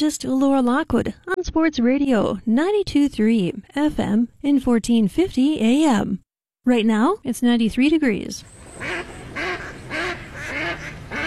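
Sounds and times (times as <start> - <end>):
speech: 0.0 - 9.1
ducks quacking: 8.8 - 11.2.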